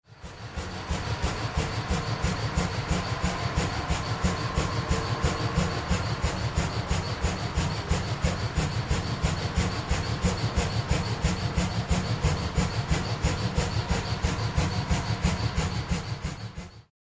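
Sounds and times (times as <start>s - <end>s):
air compressor machine running: 0.1s - 16.9s.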